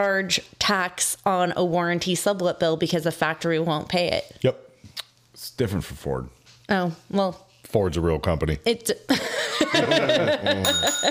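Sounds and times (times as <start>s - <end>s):
speech: 0.0s - 4.6s, 5.4s - 11.0s
chuckling laughter: 9.1s - 11.0s
bell ringing with a bright sustained high tone: 10.6s - 11.0s.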